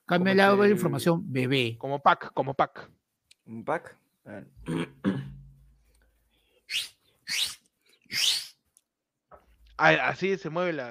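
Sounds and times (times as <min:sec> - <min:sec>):
speech: 0:00.1 - 0:05.3, 0:06.7 - 0:07.5, 0:09.8 - 0:10.9
breathy swooping whistles: 0:06.7 - 0:08.6.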